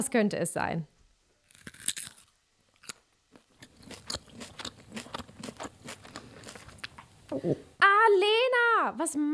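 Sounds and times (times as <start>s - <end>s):
speech: 0.0s - 1.0s, 7.3s - 9.3s
person chewing thin crunchy carrot slices: 1.5s - 7.8s.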